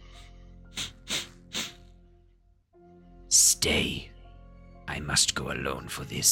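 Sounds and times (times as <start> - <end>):
voice imitating sniffing: 0.1 - 1.9
speech: 3.4 - 4.1, 5.1 - 6.3.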